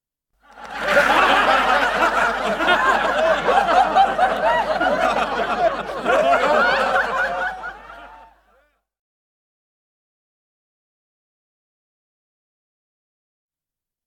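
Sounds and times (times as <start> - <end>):
25 people laughing: 0.4 - 8.7.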